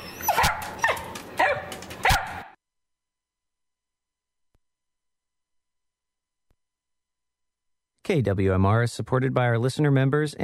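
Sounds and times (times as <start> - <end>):
dog barking with a slight whine: 0.2 - 2.6
speech: 8.1 - 10.4.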